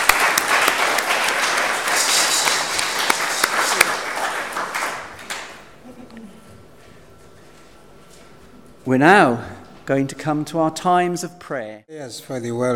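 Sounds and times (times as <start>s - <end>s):
room full of people applauding: 0.0s - 5.8s
speech: 8.9s - 12.7s.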